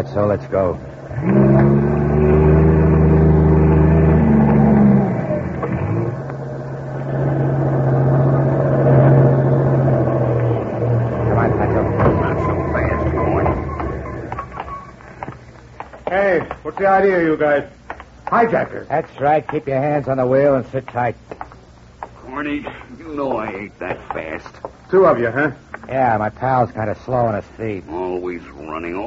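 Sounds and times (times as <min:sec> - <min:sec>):
speech: 0:00.0 - 0:02.4, 0:16.8 - 0:21.2, 0:22.4 - 0:29.0
heavy trailer truck engine roaring up steep highway: 0:00.0 - 0:15.5.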